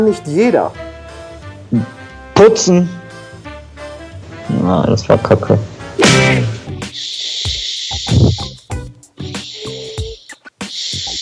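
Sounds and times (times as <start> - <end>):
speech: 0.0 - 0.9, 1.7 - 3.0, 4.5 - 7.1
mouth noises: 6.0 - 11.1
loud breathing with long hissing exhales: 6.2 - 11.1.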